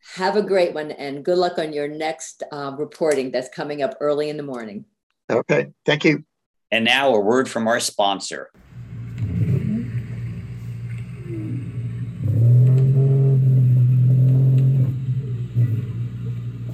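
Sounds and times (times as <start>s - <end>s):
speech: 0.1s - 8.7s
North American right whale calls: 9.3s - 16.7s.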